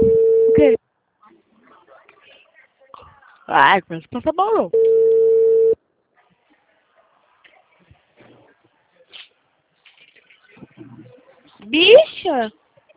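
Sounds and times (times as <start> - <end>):
telephone line tone after a dropped call: 0.0 - 0.8, 4.8 - 5.8
quiet noise: 0.0 - 12.9
speech: 0.6 - 0.8, 3.5 - 5.2, 11.7 - 12.6.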